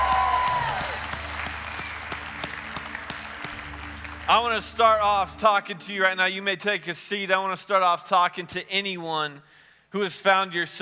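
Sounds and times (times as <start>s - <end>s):
church audience cheering and shouting praise: 0.0s - 2.9s
church audience applauding loudly: 0.0s - 5.4s
speech: 4.3s - 10.8s.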